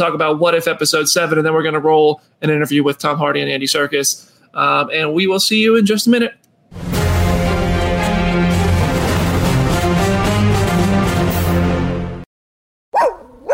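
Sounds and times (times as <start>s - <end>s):
speech: 0.0s - 6.9s
music: 6.8s - 12.3s
dog yipping: 12.9s - 13.5s.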